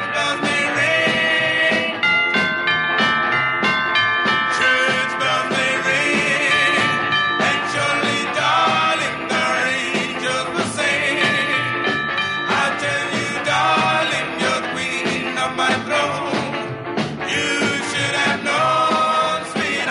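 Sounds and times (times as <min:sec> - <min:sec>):
ding-dong bell chimes: 0:00.0 - 0:08.8, 0:11.1 - 0:13.9
doo-wop song with harmonized vocals and band backing: 0:00.0 - 0:19.8.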